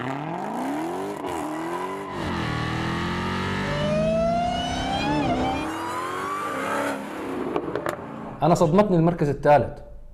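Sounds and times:
Dodge Challenger Hellcat car engine revving: 0:00.0 - 0:08.4
speech: 0:08.4 - 0:09.9.

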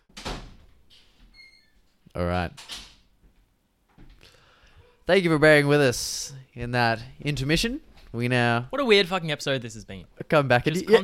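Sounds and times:
door shutting with a thud: 0:00.1 - 0:00.8
speech: 0:02.2 - 0:02.8, 0:05.1 - 0:11.0.

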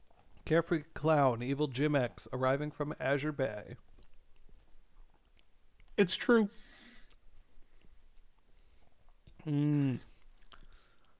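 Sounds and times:
person chewing food with wet clicks and smacks: 0:00.0 - 0:00.4, 0:03.7 - 0:06.0, 0:06.6 - 0:11.1
speech: 0:00.5 - 0:03.9, 0:06.0 - 0:06.7, 0:09.4 - 0:10.1.

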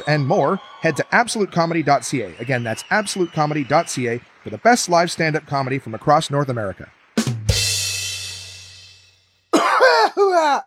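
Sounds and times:
speech: 0:00.0 - 0:07.0, 0:10.2 - 0:10.6
throaty coughs: 0:09.5 - 0:10.6.

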